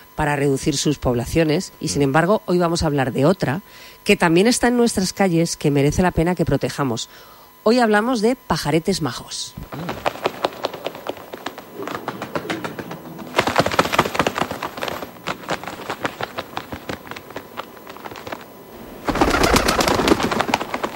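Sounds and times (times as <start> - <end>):
speech: 0.2 - 10.2
pigeon cooing: 9.6 - 20.9.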